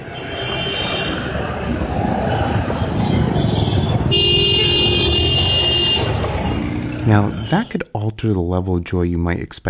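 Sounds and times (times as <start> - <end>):
busy road traffic roar: 0.0 - 9.0
sustained car horn blaring: 0.1 - 1.2, 2.9 - 7.9
speech: 7.1 - 9.6.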